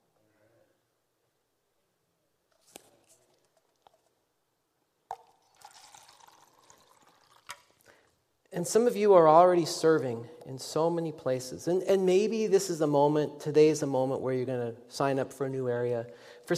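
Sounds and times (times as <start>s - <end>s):
water pouring from a jug into a container: 5.1s - 8.1s
speech: 8.6s - 16.5s.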